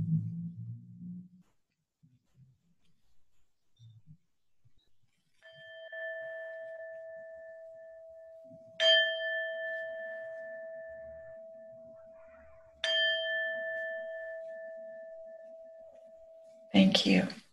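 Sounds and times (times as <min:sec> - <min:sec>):
bell ringing: 0:05.4 - 0:17.3
speech: 0:16.7 - 0:17.4.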